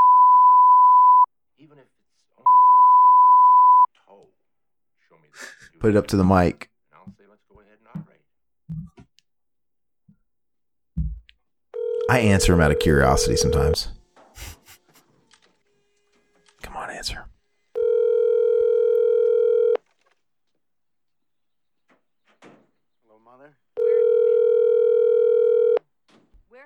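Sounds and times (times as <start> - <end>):
telephone ringback tone on an outgoing call: 0.0 - 1.3, 2.5 - 3.9, 11.8 - 14.0, 17.8 - 19.8, 23.8 - 25.8
speech: 5.3 - 6.7, 12.1 - 14.0.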